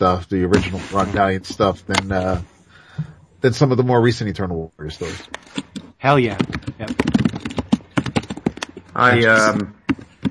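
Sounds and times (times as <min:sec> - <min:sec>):
speech: 0:00.0 - 0:07.0, 0:09.0 - 0:10.1
typing on a computer keyboard: 0:05.5 - 0:08.9, 0:09.8 - 0:10.2.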